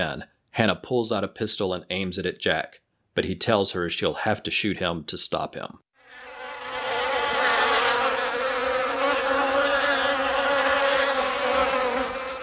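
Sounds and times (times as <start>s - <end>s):
speech: 0.0s - 6.3s
large swarm of stinging insects buzzing: 6.0s - 12.4s.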